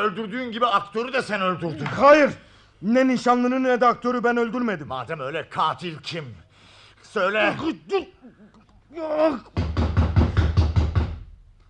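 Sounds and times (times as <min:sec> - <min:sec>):
speech: 0:00.0 - 0:06.4, 0:07.1 - 0:09.6
heavy knocks on a door: 0:09.6 - 0:11.3.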